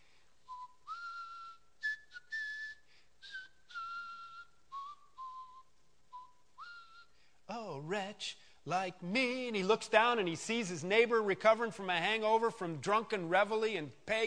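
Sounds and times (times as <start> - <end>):
person whistling a slow hymn-like melody: 0.4 - 7.3
speech: 7.9 - 14.2.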